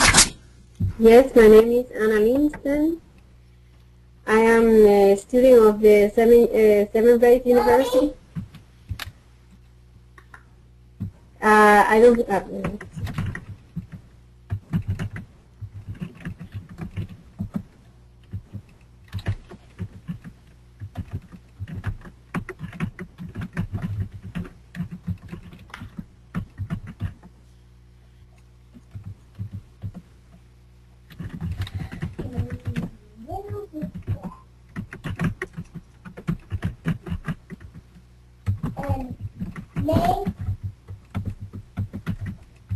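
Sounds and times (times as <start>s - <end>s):
speech: 1.0s - 3.0s, 4.3s - 8.2s, 11.4s - 13.1s
typing on a computer keyboard: 12.1s - 27.3s, 28.7s - 30.0s, 31.1s - 42.7s.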